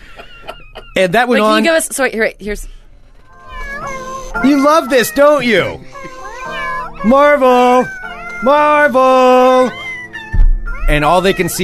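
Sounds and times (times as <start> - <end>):
speech: 1.0 - 2.8, 4.4 - 6.2, 7.0 - 9.8, 10.9 - 11.6
person singing a meowing version of a song imitating a cat: 3.5 - 11.6.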